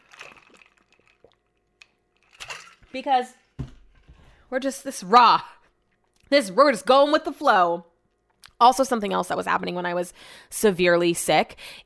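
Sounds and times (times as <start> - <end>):
person sipping water: 0.0 - 2.8
speech: 2.9 - 3.4, 4.5 - 5.6, 6.3 - 7.9, 8.6 - 11.8.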